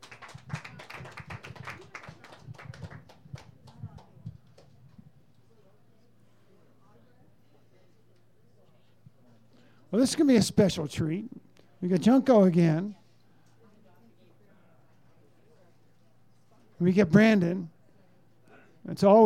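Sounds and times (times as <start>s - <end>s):
audience clapping for a band: 0.0s - 4.8s
low murmur of noise: 0.0s - 19.2s
speech: 9.9s - 13.0s, 16.8s - 17.7s, 18.9s - 19.2s.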